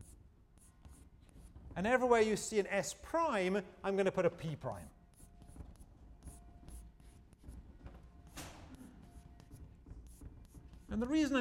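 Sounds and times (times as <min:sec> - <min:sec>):
scratchy writing strokes on a board during a lecture: 0:00.0 - 0:01.8, 0:04.3 - 0:11.3
speech: 0:01.8 - 0:05.0, 0:11.0 - 0:11.3.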